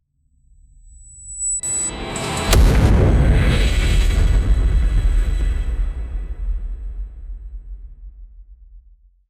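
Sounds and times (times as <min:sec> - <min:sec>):
cinematic dark magic sound effect: 0:01.6 - 0:06.6.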